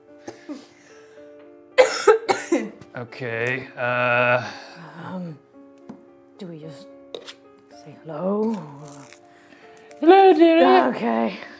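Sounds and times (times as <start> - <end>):
coughing: 1.8 - 2.8
speech: 3.0 - 5.5, 6.4 - 6.9, 7.8 - 9.1, 10.0 - 11.5.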